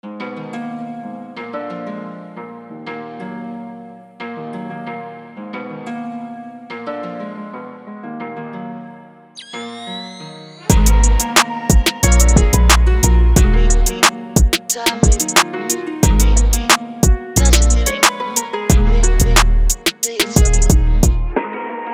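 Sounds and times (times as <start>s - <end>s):
beat with vocals: 10.7s - 21.3s.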